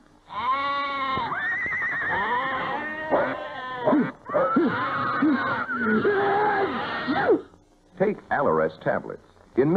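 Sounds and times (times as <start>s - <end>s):
goats and sheep bleating: 0.3s - 7.5s
horse whinnying: 0.3s - 7.5s
speech: 8.0s - 9.7s.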